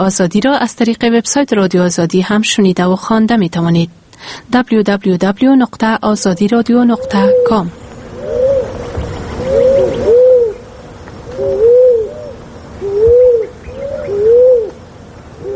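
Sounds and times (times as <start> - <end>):
speech: 0.0 - 8.4
faint hiss: 0.0 - 15.5
turtle dove cooing: 6.1 - 15.5.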